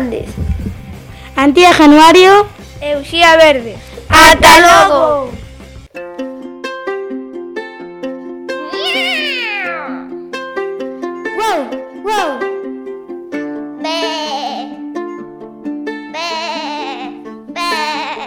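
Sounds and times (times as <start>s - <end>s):
speech: 0.1s - 0.7s, 1.4s - 5.4s
bright steady tune of plucked or piano-like notes: 5.9s - 18.2s
cat meowing loudly: 8.6s - 10.1s.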